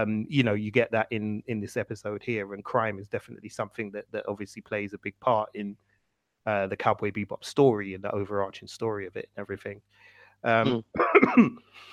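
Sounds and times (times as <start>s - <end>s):
speech: 0.0s - 11.9s
faint breath: 9.9s - 10.4s
voiced throat clearing or short cough: 10.5s - 11.6s.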